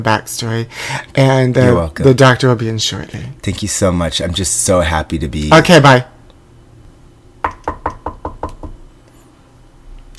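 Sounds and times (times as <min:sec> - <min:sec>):
speech: 0:00.0 - 0:06.1
firm knocks on a door: 0:07.4 - 0:08.8.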